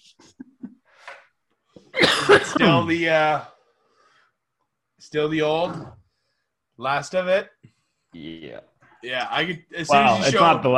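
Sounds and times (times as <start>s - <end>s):
person coughing: 2.0s - 3.1s
speech: 2.6s - 3.5s, 5.1s - 6.0s, 6.8s - 10.7s.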